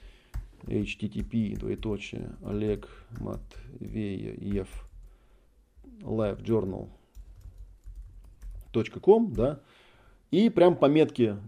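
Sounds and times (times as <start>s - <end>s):
typing on a computer keyboard: 0.3s - 5.1s, 7.0s - 9.6s
speech: 0.7s - 4.9s, 6.0s - 7.0s, 8.7s - 11.4s.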